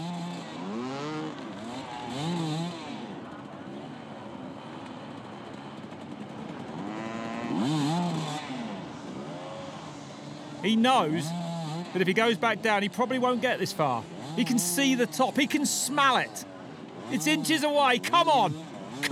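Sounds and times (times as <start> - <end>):
motorcycle engine revving hard while climbing a steep hill: 0.0 - 3.2, 5.5 - 12.0
speech: 10.6 - 16.5, 17.1 - 19.1.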